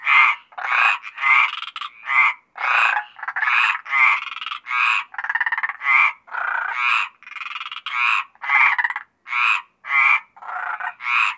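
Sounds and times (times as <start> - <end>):
Mediterranean tree frog chorus croaking: 0.0 - 11.3.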